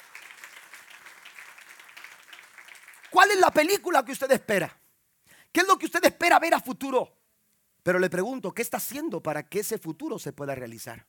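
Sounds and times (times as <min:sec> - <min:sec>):
audience clapping: 0:00.0 - 0:04.0
speech: 0:03.1 - 0:04.8, 0:05.5 - 0:07.2, 0:07.8 - 0:11.0.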